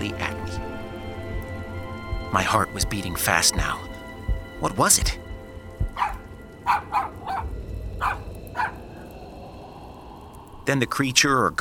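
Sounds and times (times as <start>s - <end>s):
low steady rumble: 0.0s - 11.6s
speech: 2.3s - 3.9s, 4.6s - 5.2s, 10.7s - 11.6s
dog barking: 5.8s - 8.8s.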